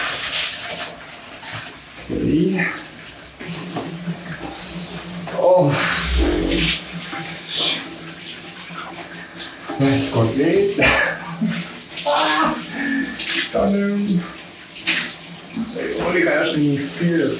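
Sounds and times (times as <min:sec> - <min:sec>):
cold shower water running: 0:00.0 - 0:17.3
speech: 0:02.1 - 0:02.9, 0:05.6 - 0:06.8, 0:09.8 - 0:11.1, 0:16.6 - 0:17.3
person taking a cold shower gasping: 0:12.6 - 0:13.3.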